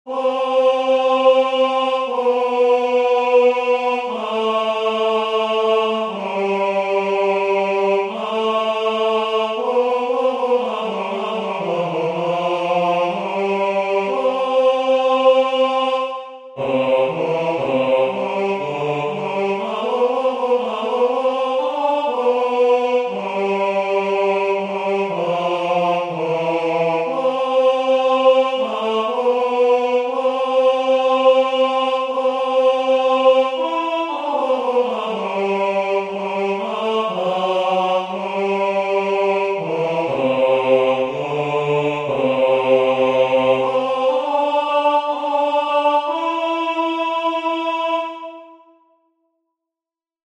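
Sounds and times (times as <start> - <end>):
choir singing with bass voices: 0.0 - 49.1.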